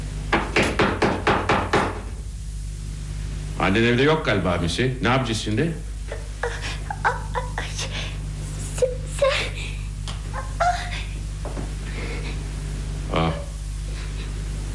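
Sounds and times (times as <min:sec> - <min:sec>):
steady low hum: 0:00.0 - 0:14.7
speech: 0:03.6 - 0:06.7
child crying: 0:06.4 - 0:08.1, 0:08.8 - 0:09.6, 0:10.3 - 0:11.2.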